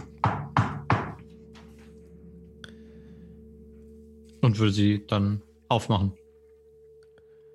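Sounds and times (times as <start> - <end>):
knocking on a front door reinforced with bronze bands: 0.0 - 1.2
speech: 4.4 - 6.2.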